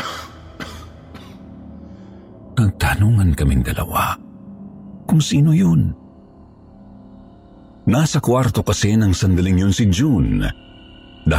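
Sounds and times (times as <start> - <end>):
person coughing outside a house: 0.0 - 1.5
speech: 2.6 - 4.2, 5.1 - 6.0, 7.9 - 11.3.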